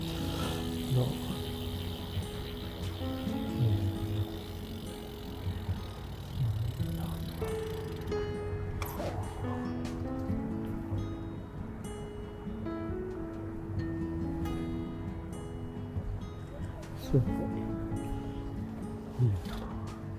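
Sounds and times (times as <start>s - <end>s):
folding bicycle freewheel ratchet ticking: 0.0s - 8.2s
four-speed folding bicycle chain and gears whirring: 0.0s - 8.4s
faint outdoor rumble: 0.0s - 20.1s.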